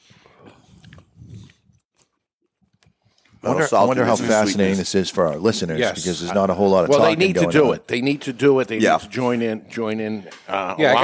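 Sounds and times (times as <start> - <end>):
smacking mouth sounds: 0.4 - 3.4
wet chewing of beef jerky: 0.6 - 3.4
speech: 3.4 - 11.0.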